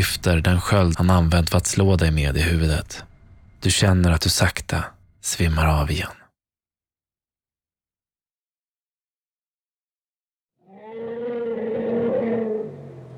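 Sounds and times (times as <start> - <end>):
speech: 0.0 - 6.2
elephant trumpeting: 10.7 - 13.1.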